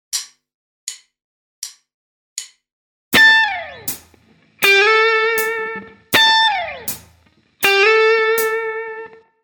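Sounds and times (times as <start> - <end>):
blues guitar licks: 3.2 - 9.3.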